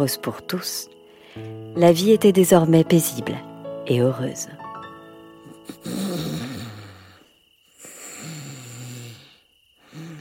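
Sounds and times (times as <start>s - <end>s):
speech: 0.0s - 4.6s
loud rumbling raspy snoring: 5.7s - 10.2s.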